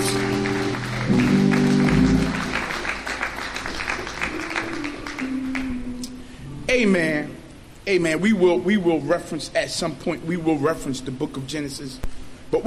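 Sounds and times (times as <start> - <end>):
sustained organ or keyboard chord: 0.0 - 2.8, 4.3 - 6.2
crowd clapping in a large room: 0.0 - 6.1
speech: 7.9 - 12.6.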